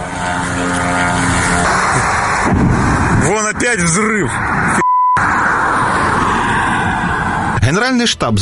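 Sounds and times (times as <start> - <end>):
propeller-driven attack drone buzzing overhead during refinery strike: 0.0 - 7.6
speech: 3.7 - 4.8, 7.7 - 8.4.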